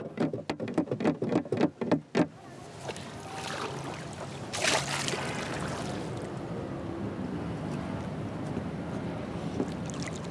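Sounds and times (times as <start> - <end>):
paddle slapping river water to attract fish: 0.0 - 6.3, 9.4 - 10.2
water churning and lapping around a small round boat: 0.0 - 6.6, 7.9 - 10.2.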